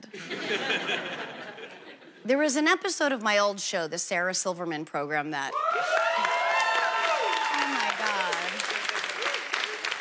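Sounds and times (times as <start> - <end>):
laughter: 0.0 - 2.2
speech: 2.2 - 6.0
scattered whoops and vocal cheers: 5.5 - 8.6
studio audience applause: 5.6 - 9.9.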